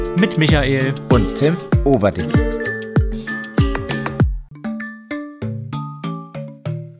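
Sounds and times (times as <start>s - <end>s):
speech: 0.2s - 2.7s
cheap synthetic ringtone-style intro jingle: 2.3s - 6.6s.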